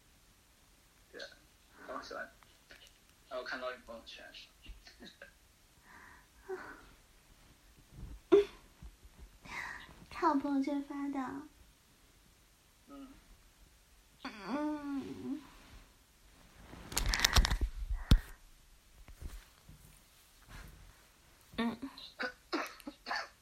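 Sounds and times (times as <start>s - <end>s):
speech: 3.5s - 5.4s, 10.2s - 11.5s
rustling and shuffling: 6.0s - 12.3s, 14.9s - 21.7s
short moaning vocal sound: 14.2s - 15.4s
harsh coughs from a person feeling unwell: 22.2s - 23.4s.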